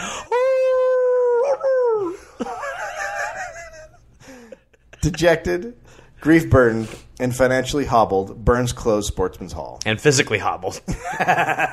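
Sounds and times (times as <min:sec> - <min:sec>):
dog howling and whining: 0:00.4 - 0:02.2
laughter: 0:02.1 - 0:05.5, 0:10.9 - 0:11.7
speech: 0:05.0 - 0:11.7.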